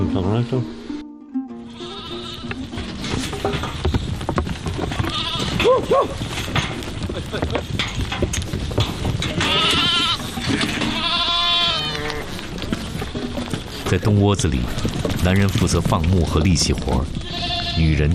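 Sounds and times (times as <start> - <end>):
speech: 0.1 - 0.8, 5.7 - 6.3, 7.2 - 8.0, 13.9 - 17.2, 17.8 - 18.1
herd of goats and sheep bleating: 1.5 - 7.7, 9.2 - 13.8, 14.5 - 15.2, 16.7 - 18.1.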